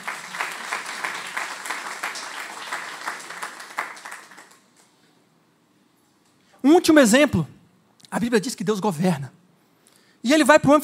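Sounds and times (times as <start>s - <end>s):
audience at a religious gathering applauding: 0.0s - 4.9s
speech: 6.7s - 9.4s, 10.2s - 10.8s.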